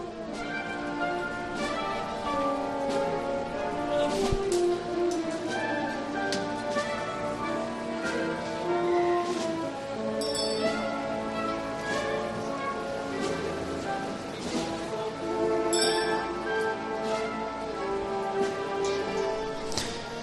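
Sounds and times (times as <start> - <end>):
dense outdoor ambience: 0.0 - 20.2
procession herald's handbell ringing: 10.2 - 10.9, 15.7 - 16.3.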